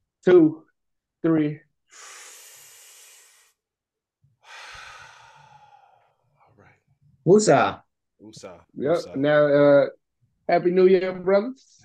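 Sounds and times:
speech: 0:00.2 - 0:00.6, 0:01.2 - 0:02.2, 0:07.2 - 0:11.8
deep breath in: 0:01.9 - 0:03.6, 0:04.4 - 0:06.4.

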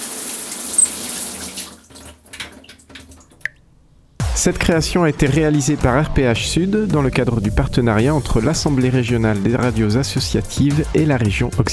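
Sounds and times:
shower water running in a steady hiss: 0:00.0 - 0:03.6
speech: 0:04.4 - 0:11.7.

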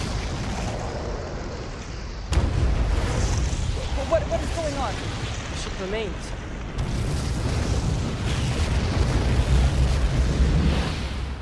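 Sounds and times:
sustained rumbling explosion: 0:00.0 - 0:11.4
speech: 0:04.1 - 0:07.0.

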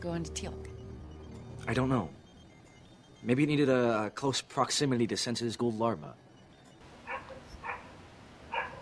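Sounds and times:
speech: 0:00.0 - 0:00.7, 0:01.6 - 0:02.2, 0:03.2 - 0:06.2
neighbour's dog barking: 0:07.0 - 0:08.8.

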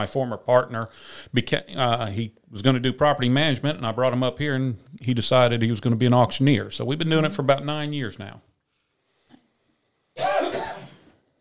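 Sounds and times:
speech: 0:00.0 - 0:08.5
single harsh cough: 0:10.2 - 0:11.2.

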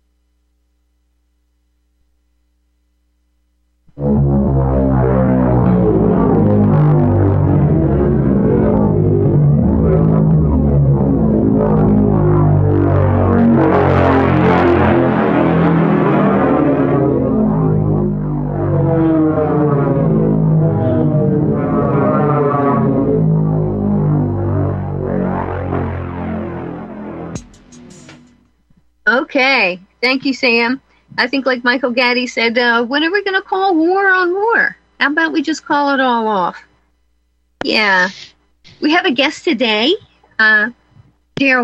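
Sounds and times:
speech: 0:04.0 - 0:04.7, 0:29.7 - 0:36.7, 0:37.6 - 0:40.8, 0:41.4 - 0:41.6
military propeller aircraft droning overhead: 0:04.0 - 0:28.4.

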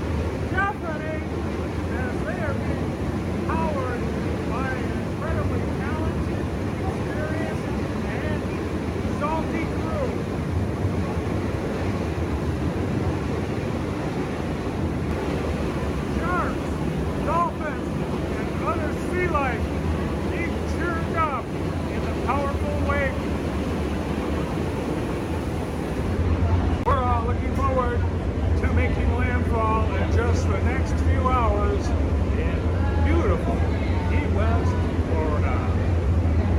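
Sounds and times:
powerful boat engines roaring: 0:00.0 - 0:36.5.

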